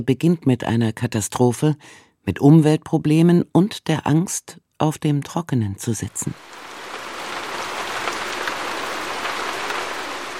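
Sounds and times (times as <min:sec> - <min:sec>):
speech: 0:00.0 - 0:06.8
heavy rain pouring: 0:06.1 - 0:10.3.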